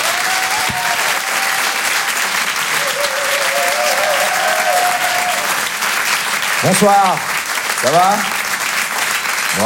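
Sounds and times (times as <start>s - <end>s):
audience cheering: 0.0s - 7.2s
live comedy audience applauding in a Paris theatre: 0.0s - 9.6s
speech: 6.6s - 8.3s.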